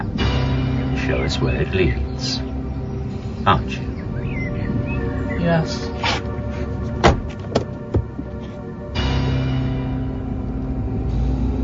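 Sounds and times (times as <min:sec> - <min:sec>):
car engine starting up and rumbling as the car moves: 0:00.0 - 0:11.6
speech: 0:01.1 - 0:02.5, 0:03.4 - 0:03.9, 0:05.4 - 0:06.0
car door shutting: 0:06.9 - 0:08.4.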